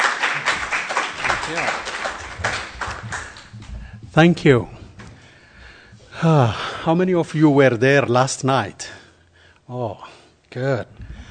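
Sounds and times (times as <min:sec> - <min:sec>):
audience applause: 0:00.0 - 0:03.7
speech: 0:01.5 - 0:01.9, 0:04.2 - 0:04.8, 0:06.2 - 0:08.8, 0:09.7 - 0:11.0.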